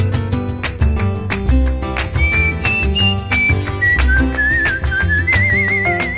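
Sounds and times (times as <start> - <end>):
rhythmic instrumental backing with a strong beat: 0.0 - 6.1
whistled melody in a song: 1.9 - 6.1.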